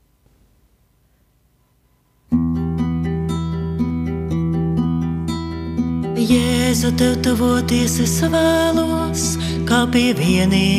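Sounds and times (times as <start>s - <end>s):
song with sustained organ-like chords and rhythmic accents: 2.4s - 10.7s
speech: 6.2s - 10.7s.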